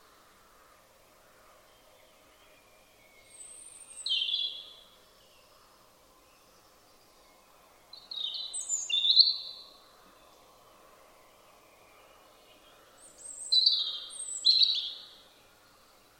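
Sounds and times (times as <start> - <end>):
soft background noise: 0.0 - 16.1
European robin singing: 1.8 - 5.5, 7.2 - 10.4, 11.8 - 16.0.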